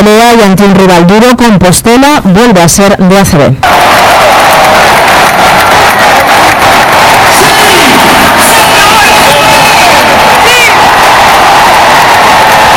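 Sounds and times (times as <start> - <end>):
speech: 0.6 - 3.9
packed arena crowd applauding: 3.6 - 12.7
scattered whoops and shouts from arena crowd: 3.6 - 12.7.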